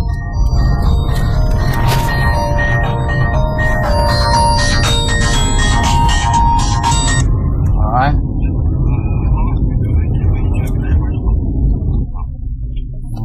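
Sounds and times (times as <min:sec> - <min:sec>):
mobile phone ringing with tonal melody: 0:00.0 - 0:07.2
faint voices: 0:00.0 - 0:13.2
low car engine rumble: 0:00.0 - 0:13.2.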